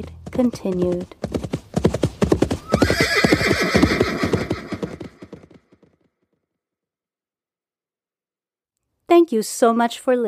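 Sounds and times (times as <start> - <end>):
speech: 0.0 - 1.6, 9.3 - 10.2
horse hooves clip-clopping: 0.0 - 6.0
horse whinnying: 2.6 - 5.4.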